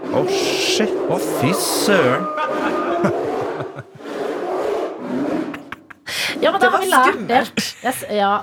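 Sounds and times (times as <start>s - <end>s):
speech: 0.1s - 3.9s, 6.4s - 8.4s
person imitating a polar bear roar: 0.2s - 3.8s
laughter: 1.4s - 4.1s, 5.5s - 8.4s.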